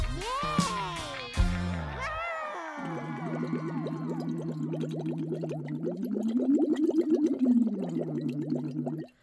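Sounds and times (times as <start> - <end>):
person humming through a straw: 0.1 - 1.3, 1.9 - 4.8
voice humming through a straw into a cup of water bubbling: 2.9 - 9.2.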